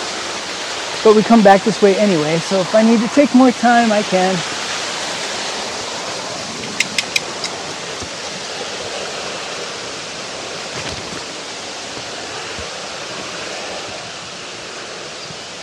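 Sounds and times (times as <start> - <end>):
waterfall rushing: 0.0 - 15.6
speech: 1.0 - 4.5
faint clicks: 6.6 - 7.6.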